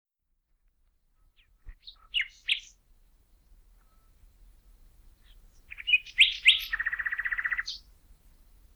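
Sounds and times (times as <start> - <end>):
Common nightingale Luscinia megarhynchos singing: 1.2 - 2.8, 5.0 - 7.9.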